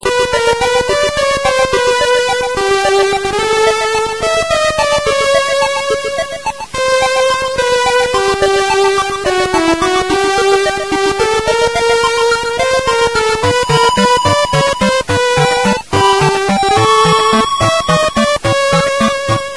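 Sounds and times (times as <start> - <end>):
Nintendo Virtual Boy video game startup jingle: 0.0 - 19.5.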